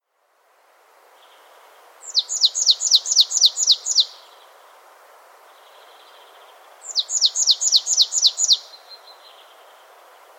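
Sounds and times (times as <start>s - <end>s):
Poecile palustris marsh tit calling: 2.0s - 4.2s, 6.9s - 8.7s.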